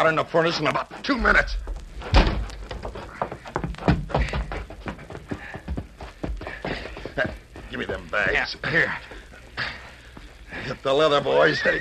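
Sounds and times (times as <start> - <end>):
speech: 0.0 - 2.2, 7.8 - 9.1, 10.6 - 11.7
heavy thunks and bumps: 1.2 - 5.1
irregular knocks and clatter: 1.2 - 7.3
door of a shack doused with coal oil being pushed open: 2.0 - 2.5.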